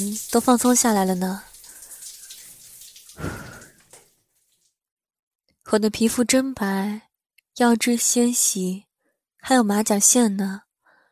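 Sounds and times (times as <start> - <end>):
speech: 0.0 - 1.5, 5.7 - 7.0, 7.6 - 10.6
water drips in a hot bath: 0.0 - 4.8.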